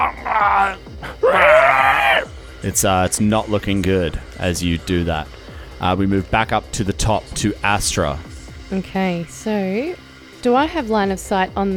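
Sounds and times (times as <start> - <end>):
person vocally imitating a creature screaming after being hit: 0.0 - 2.3
speech: 2.6 - 11.7.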